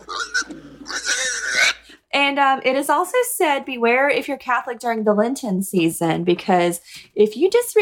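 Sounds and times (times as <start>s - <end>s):
pig oinking and grunting: 0.0s - 1.9s
speech: 2.4s - 7.8s.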